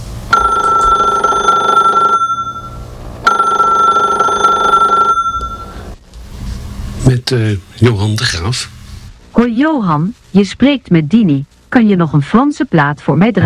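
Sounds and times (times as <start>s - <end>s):
faint hum: 0.0s - 13.4s
telephone ringing: 0.3s - 5.9s
speech: 7.3s - 8.8s, 9.4s - 13.4s.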